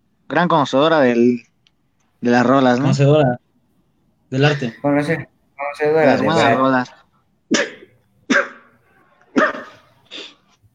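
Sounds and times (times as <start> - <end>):
speech: 0.3 - 1.5, 2.2 - 3.4, 4.3 - 7.8
dog barking: 7.5 - 9.9.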